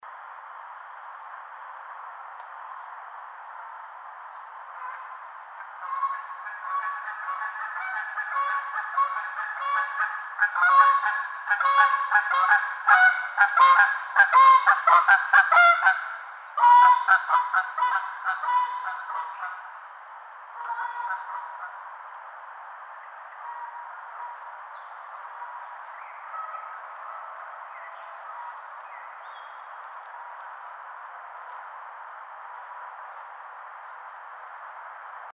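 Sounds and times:
Canada goose calling: 4.8 - 19.8, 20.6 - 21.9, 23.3 - 28.9.

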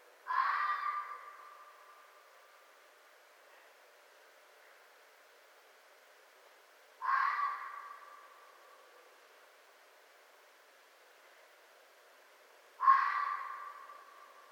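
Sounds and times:
quiet hiss: 0.0 - 14.5
red fox hoarse cry: 0.3 - 1.7, 7.0 - 8.5, 12.8 - 14.4
red fox scream: 0.3 - 1.8, 7.0 - 8.5, 12.8 - 14.3.

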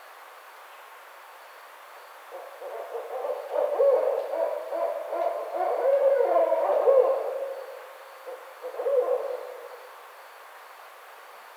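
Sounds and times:
barred owl hooting: 2.4 - 9.8.

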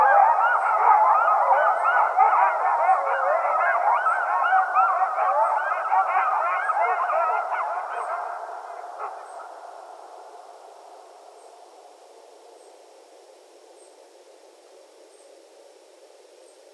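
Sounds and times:
several coyotes yipping and howling in chorus: 0.0 - 11.5.

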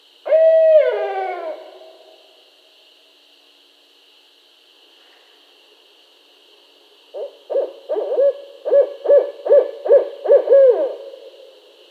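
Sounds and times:
steady high hiss: 0.0 - 11.8
barred owl hooting call: 0.2 - 2.2, 7.1 - 11.2.

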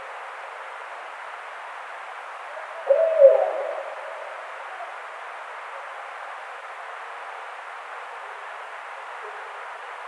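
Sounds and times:
Barred owl giving a low hoot: 2.4 - 5.1.

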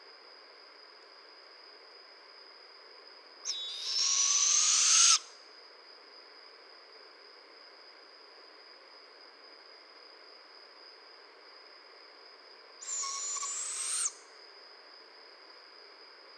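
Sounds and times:
barred owl hoarse screeches: 3.5 - 5.3, 12.8 - 14.2.

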